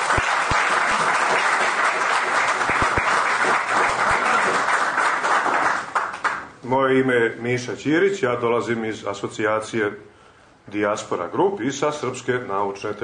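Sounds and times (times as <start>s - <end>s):
audience applause at a ceremony after a piano sonata performance: 0.0s - 6.5s
speech: 6.7s - 10.1s, 10.7s - 13.0s.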